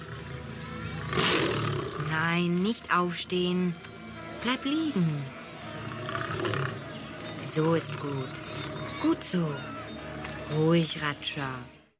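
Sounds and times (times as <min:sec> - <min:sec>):
loose circus lion roaring: 0:00.0 - 0:02.3, 0:05.8 - 0:06.9, 0:07.8 - 0:10.2
speech: 0:02.2 - 0:05.4, 0:07.4 - 0:09.8, 0:10.5 - 0:11.8.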